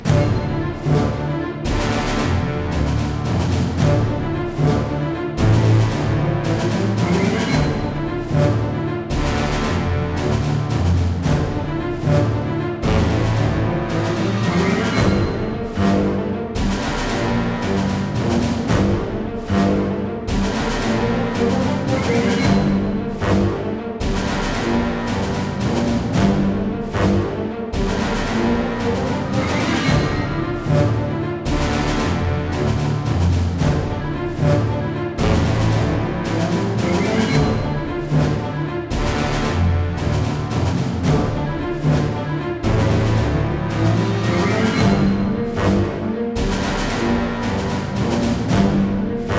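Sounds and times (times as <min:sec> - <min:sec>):
intense action music loop: 0:00.0 - 0:49.3.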